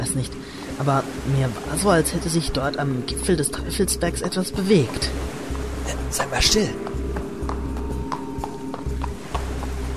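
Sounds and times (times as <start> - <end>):
low rumbling background: 0.0 - 9.9
speech: 0.2 - 6.9
horse hooves clip-clopping: 6.7 - 9.9.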